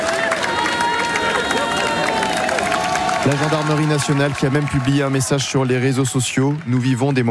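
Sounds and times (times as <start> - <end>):
dense crowd of young people cheering in the streets in France: 0.0 - 7.2
overlapping voices: 0.0 - 7.2
speech: 3.2 - 7.2.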